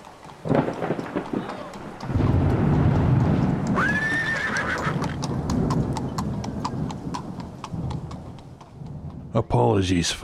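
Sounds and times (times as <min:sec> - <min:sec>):
horse-drawn carriage hooves clip-clopping: 0:00.0 - 0:09.6
rain: 0:00.0 - 0:09.6
low rumble of thunder: 0:00.3 - 0:09.6
horse whinnying: 0:03.7 - 0:05.3
speech: 0:09.6 - 0:10.2.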